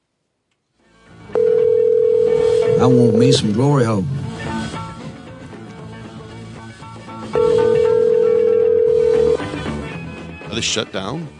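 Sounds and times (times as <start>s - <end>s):
busy music: 0.7s - 11.3s
telephone ring tone: 1.4s - 3.4s, 7.4s - 9.6s
speech: 2.8s - 4.2s, 10.6s - 11.3s.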